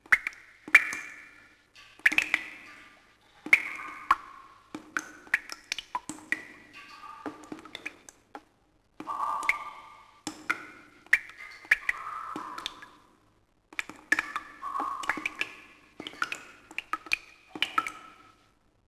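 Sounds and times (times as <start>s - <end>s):
water dripping in a cave: 0.0s - 18.8s.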